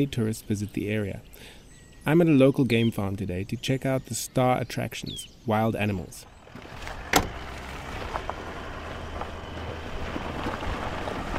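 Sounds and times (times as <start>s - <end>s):
speech: 0.0s - 6.9s
vehicle driving across a game farm: 6.2s - 11.3s
wind buffeting: 6.3s - 11.3s.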